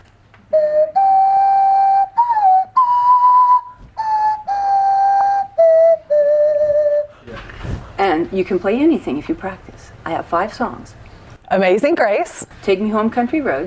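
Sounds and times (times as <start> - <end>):
whistle made by blowing across a pop bottle while wiggling the tongue: 0.5 - 7.2
speech: 8.3 - 13.6.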